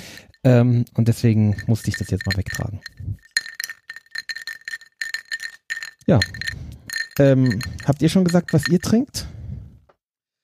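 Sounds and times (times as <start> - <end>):
speech: 0.4 - 3.2, 6.1 - 6.5, 7.2 - 9.4
glass clinking: 1.4 - 9.0.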